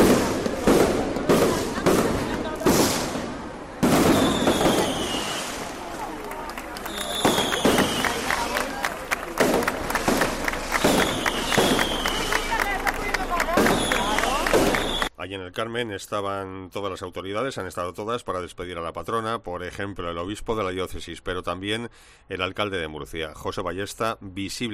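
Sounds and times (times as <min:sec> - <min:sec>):
crowd murmuring: 0:00.0 - 0:15.1
traditional fireworks exploding outdoors in a garden: 0:00.0 - 0:15.1
speech: 0:15.5 - 0:24.7.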